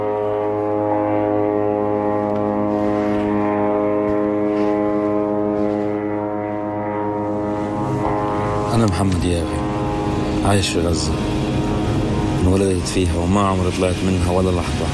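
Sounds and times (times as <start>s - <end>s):
aircraft engine droning overhead: 0.0s - 14.9s
speech: 8.8s - 9.7s, 10.4s - 11.4s, 12.4s - 14.9s.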